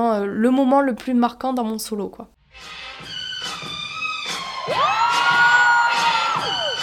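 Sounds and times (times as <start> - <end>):
speech: 0.0 - 3.1
crowd of friends cheering and shouting from the audience: 4.6 - 6.8
high excited whoops and screams: 4.7 - 6.8.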